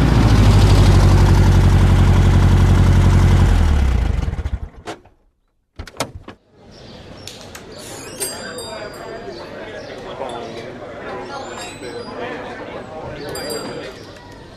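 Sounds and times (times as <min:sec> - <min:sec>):
car engine rumbling: 0:00.0 - 0:04.8.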